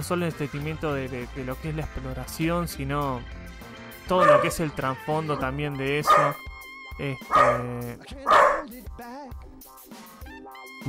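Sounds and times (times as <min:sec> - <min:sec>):
speech: 0:00.0 - 0:10.0
dog whining or yelping: 0:04.2 - 0:04.6, 0:06.1 - 0:06.4, 0:07.3 - 0:07.7, 0:08.3 - 0:08.7
dog barking: 0:04.2 - 0:06.4, 0:07.2 - 0:08.7.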